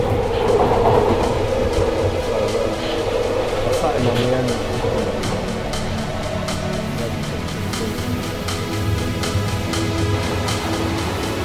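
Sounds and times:
London Underground train rumbling along the track: 0.0 - 11.4.

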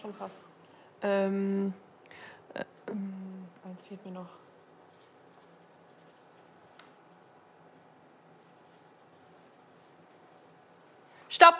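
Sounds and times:
speech: 0.0 - 1.9, 2.5 - 4.5, 11.4 - 11.5
pens scratching across paper as people write sentences: 4.3 - 11.1.

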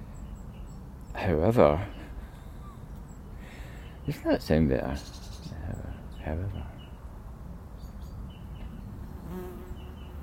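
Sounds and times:
speech: 1.2 - 2.0, 4.0 - 5.2, 6.2 - 6.7
wasp buzzing: 9.0 - 10.2.

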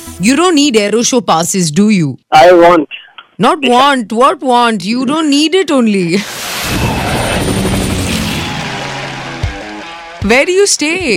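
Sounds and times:
speech: 0.2 - 7.0, 10.2 - 11.1
helicopter passing overhead with rotor thrum and engine whine: 6.4 - 10.2.

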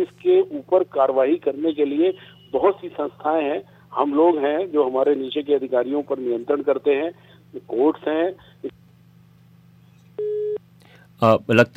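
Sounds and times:
speech: 0.0 - 8.8, 11.2 - 11.7
steady telephone busy tone after a call disconnects: 10.2 - 10.6.

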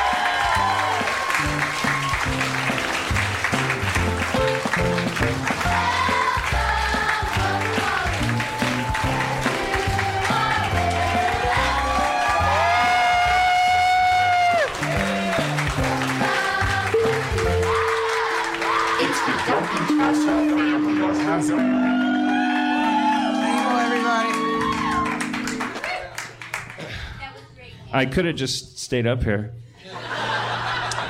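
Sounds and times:
audience cheering with shouts and whoops: 0.0 - 3.4, 5.7 - 26.4
audience applause at a live show: 0.0 - 27.0
speech: 28.0 - 29.7
laughter: 29.8 - 31.0.

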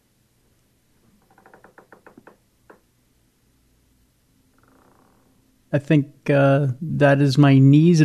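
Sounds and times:
chair knocking and creaking: 1.0 - 2.8
speech: 5.7 - 8.0.

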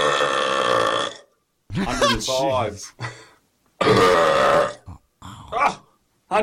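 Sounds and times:
very loud long rumbling burp: 0.0 - 1.4, 3.8 - 5.8
laughter: 1.7 - 3.2
speech: 1.8 - 3.2, 5.6 - 6.4.

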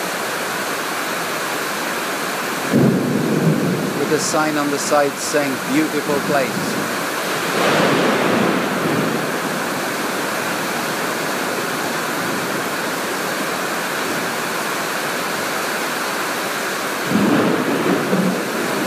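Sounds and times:
heavy rain hissing in a thunderstorm in Malaysia: 0.0 - 18.8
deep rolling thunder in Malaysia: 2.6 - 4.9, 5.6 - 12.8, 17.0 - 18.8
speech: 4.1 - 7.0.

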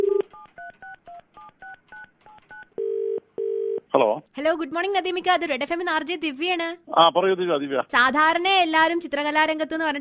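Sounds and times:
touch-tone telephone keypad dialing beeps: 0.0 - 2.7
telephone ringing tone: 0.0 - 3.8
speech: 4.2 - 9.9.

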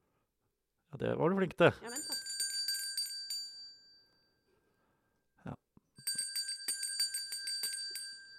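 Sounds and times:
speech: 0.9 - 2.2
small bells jingling: 1.8 - 4.6, 6.0 - 8.3.

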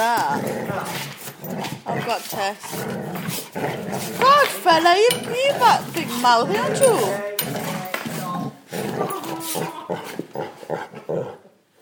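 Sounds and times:
dogs snarling, growling and barking in a scuffle: 0.0 - 11.8
speech: 2.1 - 7.3, 9.4 - 10.8.

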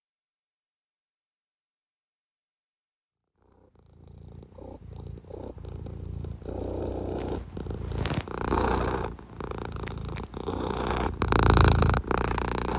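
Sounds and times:
cat purring: 3.3 - 12.7.

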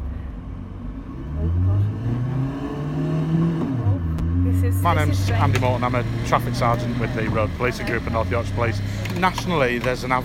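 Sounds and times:
car accelerating hard toward 40 mph during a reaction-time driving test: 0.8 - 10.2
speech: 4.8 - 10.2.

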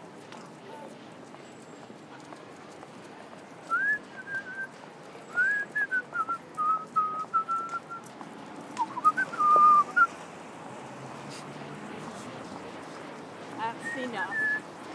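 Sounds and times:
person whistling a meandering tune: 3.7 - 4.7, 5.3 - 8.0, 8.8 - 10.1, 14.2 - 14.6.

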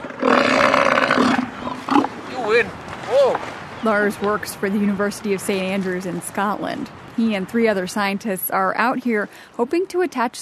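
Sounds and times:
seal bellowing: 0.0 - 4.1
speech: 2.5 - 10.4.

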